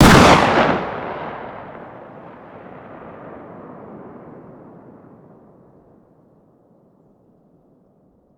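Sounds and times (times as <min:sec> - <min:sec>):
distant 12-gauge shotgun firing outdoors: 0:00.0 - 0:04.4.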